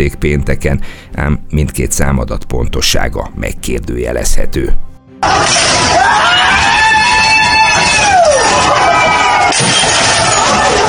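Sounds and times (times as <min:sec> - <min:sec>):
speech: 0:00.0 - 0:06.3
crowd of protesters screaming and shouting at police: 0:05.2 - 0:10.8
high wailing cries: 0:05.9 - 0:10.8.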